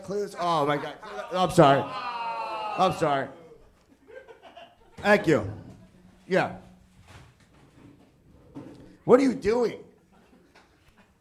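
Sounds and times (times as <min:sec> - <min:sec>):
speech: 0:00.1 - 0:02.1, 0:02.8 - 0:03.4, 0:05.0 - 0:05.6, 0:06.3 - 0:06.6, 0:09.1 - 0:09.8
laughter: 0:00.2 - 0:06.2, 0:10.0 - 0:11.1
chair scraping across a hard floor: 0:05.3 - 0:09.0.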